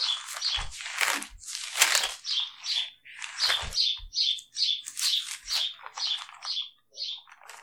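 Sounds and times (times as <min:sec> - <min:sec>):
pet birds chirping and squawking: 0:00.0 - 0:07.6
low thumps or flutters of pet birds: 0:00.3 - 0:02.2.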